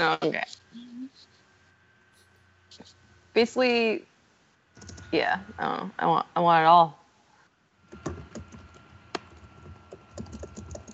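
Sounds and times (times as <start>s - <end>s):
speech: 0.0s - 1.3s, 2.8s - 4.1s, 4.8s - 7.0s
faint steady hum: 0.0s - 10.9s
typing on a computer keyboard: 4.8s - 5.1s, 7.9s - 10.9s.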